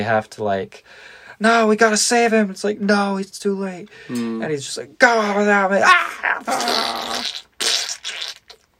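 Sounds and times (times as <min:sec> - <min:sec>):
speech: 0:00.0 - 0:07.4
wet sputtering mouth sound imitating blood spurting: 0:06.2 - 0:08.7.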